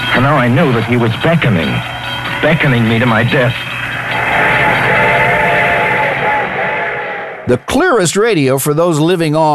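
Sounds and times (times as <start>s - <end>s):
speech: 0.2s - 3.7s, 7.5s - 9.5s
sustained whistle-like train tone: 4.1s - 7.5s.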